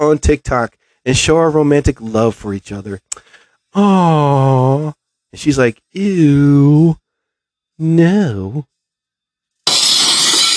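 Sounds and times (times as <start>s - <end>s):
speech: 0.0s - 7.0s, 7.8s - 8.7s
window glass shattering: 9.7s - 10.5s.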